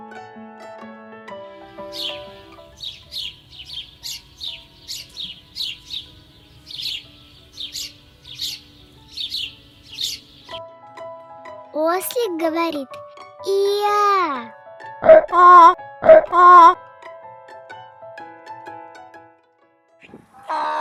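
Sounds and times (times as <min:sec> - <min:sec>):
speech: 0:01.9 - 0:02.2, 0:12.0 - 0:14.6, 0:15.3 - 0:16.7
sparrow chirping: 0:01.9 - 0:10.6, 0:15.0 - 0:16.8.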